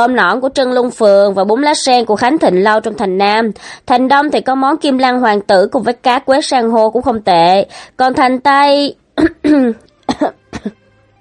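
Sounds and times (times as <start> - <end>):
speech: 0.0 - 10.8
woman deliberately dry coughing: 9.2 - 10.8.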